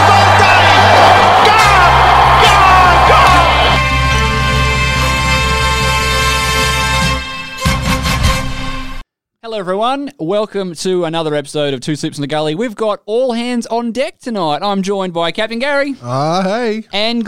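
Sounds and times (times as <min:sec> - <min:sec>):
large stadium crowd cheering a cricket hat-trick: 0:00.0 - 0:07.3
sustained musical tones: 0:01.9 - 0:08.2
speech: 0:09.6 - 0:17.2.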